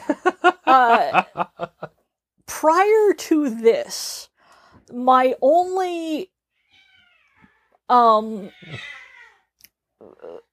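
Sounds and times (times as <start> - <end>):
laughter: 0.0 - 1.9
speech: 0.1 - 1.4, 2.6 - 4.2, 4.9 - 6.3, 7.9 - 8.9
two pet cats screeching in a fight: 6.6 - 7.6, 8.4 - 9.5.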